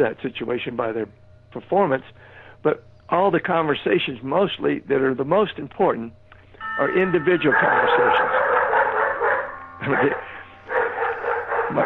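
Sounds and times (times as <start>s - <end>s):
speech: 0.0s - 6.2s, 6.8s - 8.4s, 9.8s - 10.2s
dogs barking at a delivery: 7.5s - 11.8s.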